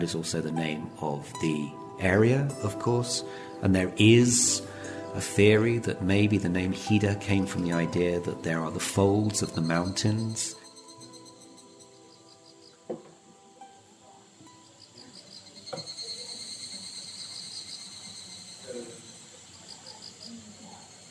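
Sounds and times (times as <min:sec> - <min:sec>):
speech: 0:00.0 - 0:10.6
high-pitched insect chirping in dense forest: 0:00.0 - 0:21.1
faint knocks: 0:12.9 - 0:13.2.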